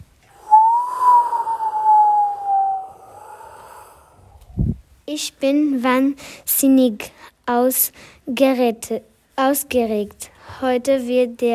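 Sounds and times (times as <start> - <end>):
wind whistling over a rushing hiss: 0.3 - 4.9
speech: 5.1 - 11.5.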